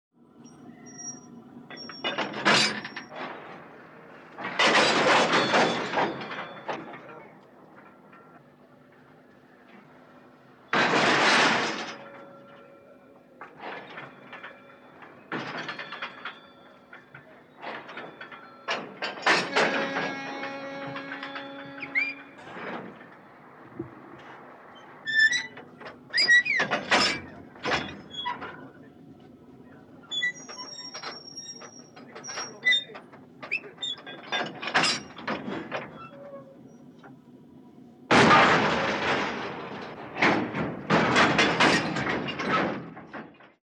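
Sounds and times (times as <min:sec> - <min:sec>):
railway wagons coupling: 0:00.4 - 0:43.6.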